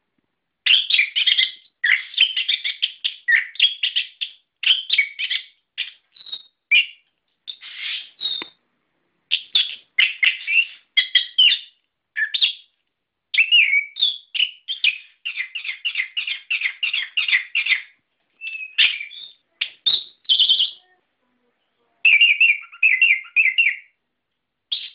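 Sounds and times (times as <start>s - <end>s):
bird chirping in sharp varied tweets and trills: 0.6s - 8.6s, 9.3s - 24.0s, 24.6s - 24.9s.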